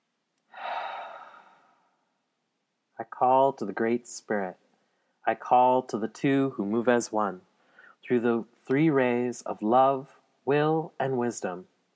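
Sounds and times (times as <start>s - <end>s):
person taking a deep breath: 0.5s - 2.1s, 7.6s - 8.0s
speech: 3.0s - 4.6s, 5.3s - 11.7s.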